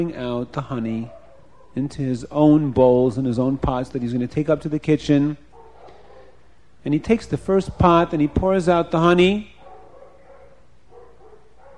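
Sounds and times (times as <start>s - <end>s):
speech: 0.0s - 1.2s, 1.8s - 5.4s, 6.8s - 9.5s
steady hiss: 0.0s - 11.7s
dogs barking: 0.9s - 1.8s, 5.1s - 6.6s, 7.5s - 11.7s.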